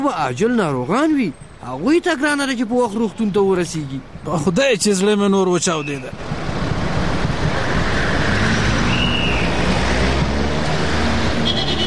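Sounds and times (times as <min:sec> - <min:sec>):
speech: 0:00.0 - 0:06.4
road traffic with cars waiting at a signal: 0:00.0 - 0:11.8.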